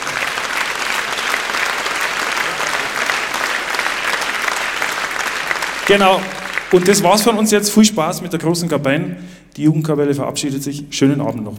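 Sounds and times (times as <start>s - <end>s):
audience applause: 0.0s - 7.5s
speech: 5.9s - 11.5s.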